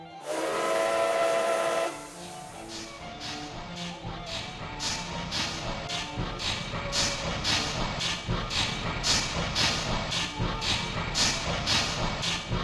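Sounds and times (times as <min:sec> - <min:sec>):
steam locomotive whistle shrieking: 0:00.2 - 0:02.5
steam locomotive pulling away with chuffing and hiss: 0:00.2 - 0:12.6.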